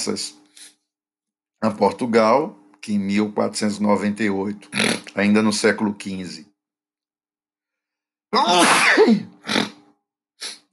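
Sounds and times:
speech: 0.0s - 0.4s, 1.6s - 6.5s, 8.3s - 9.3s
short breathy sniffs or exhales: 0.5s - 0.8s, 10.4s - 10.7s
loud sneeze: 8.4s - 9.8s.

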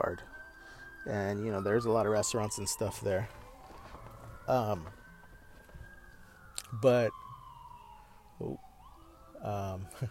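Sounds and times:
ambulance siren wailing: 0.0s - 10.0s
speech: 0.1s - 0.4s, 1.0s - 3.4s, 4.5s - 5.0s, 6.7s - 7.2s, 8.4s - 8.7s, 9.4s - 10.0s.

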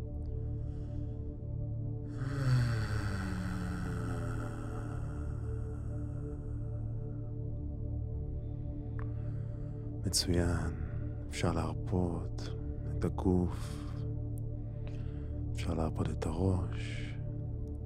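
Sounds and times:
constant deep drone: 0.0s - 17.8s
low steady vocal hum on the exhale in a breathing exercise: 2.0s - 7.5s, 8.4s - 14.1s, 14.7s - 17.3s
speech: 10.1s - 13.9s, 15.7s - 17.1s.

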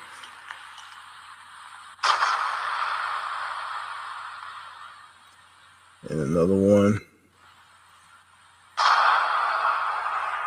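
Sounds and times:
hissing crackling decay of explosion: 0.0s - 6.5s, 8.4s - 10.4s
faint steady noise: 0.0s - 10.4s
explosion sound effect: 2.0s - 4.5s, 8.8s - 10.4s
speech: 6.0s - 7.1s.

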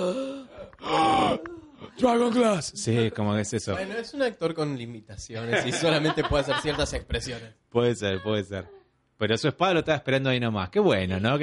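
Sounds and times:
speech: 0.0s - 1.0s, 2.0s - 11.4s
person imitating a sharp dramatic gasping breath: 0.0s - 2.0s
laughter: 5.4s - 7.4s.

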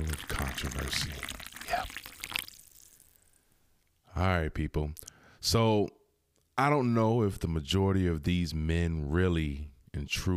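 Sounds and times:
drink pouring into a glass: 0.0s - 3.2s
speech: 0.1s - 2.0s, 4.2s - 6.0s, 6.6s - 10.3s.

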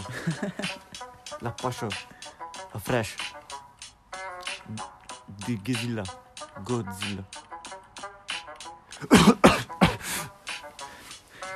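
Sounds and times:
laughter: 0.0s - 0.8s
speech: 0.2s - 0.8s, 1.5s - 3.4s, 5.5s - 7.4s
person coughing: 9.0s - 10.4s.

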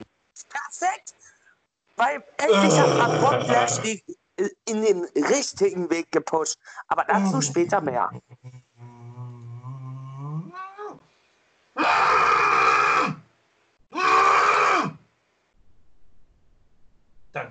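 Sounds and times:
speech: 2.0s - 8.6s
person screaming loudly: 2.5s - 3.8s, 11.8s - 13.2s, 13.9s - 15.0s
person groaning: 2.5s - 3.9s, 7.2s - 7.9s.

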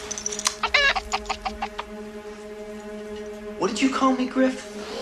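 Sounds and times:
chicken clucking: 0.6s - 1.9s
speech: 3.8s - 4.7s.

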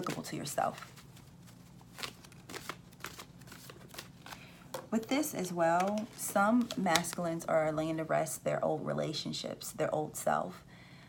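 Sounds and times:
tarot cards being shuffled: 0.0s - 7.4s
speech: 0.3s - 1.0s, 4.9s - 10.7s.

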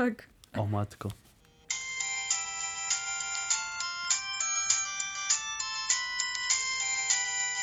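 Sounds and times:
speech: 0.0s - 1.2s
polyphonic mobile phone ringtone with bouncy synthesized melody: 1.5s - 7.6s.

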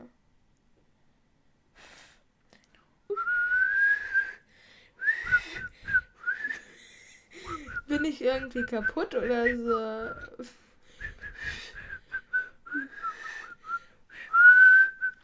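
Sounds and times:
person failing to whistle with airy blowing and wavering tones: 3.1s - 4.4s, 5.0s - 6.7s, 7.4s - 10.4s, 11.0s - 15.2s
speech: 8.0s - 10.6s.

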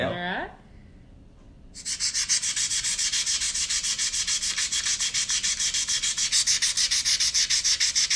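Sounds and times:
sanding wood: 1.8s - 8.1s.

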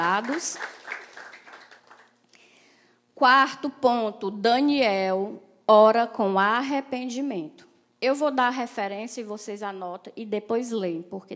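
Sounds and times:
speech: 0.0s - 0.8s, 3.2s - 11.3s
crowd applauding: 0.0s - 2.2s.

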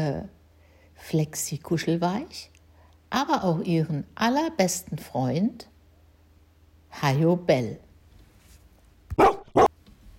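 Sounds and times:
speech: 0.0s - 0.4s, 1.0s - 2.5s, 3.1s - 5.7s, 6.9s - 7.8s
dog barking: 9.2s - 9.7s.

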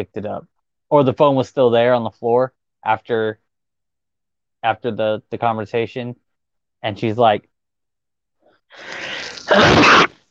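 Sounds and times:
speech: 0.0s - 3.4s, 4.6s - 6.2s, 6.8s - 7.5s, 8.7s - 10.1s
human sneeze: 9.0s - 10.2s.

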